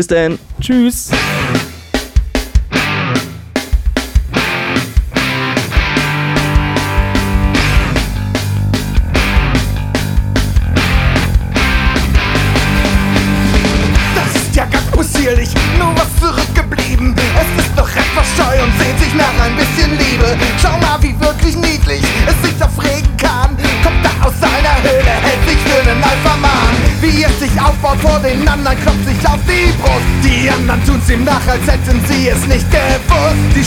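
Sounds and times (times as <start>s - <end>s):
speech: 0.0s - 1.7s, 29.6s - 33.6s
loud dense band song with driving instruments: 0.0s - 33.6s.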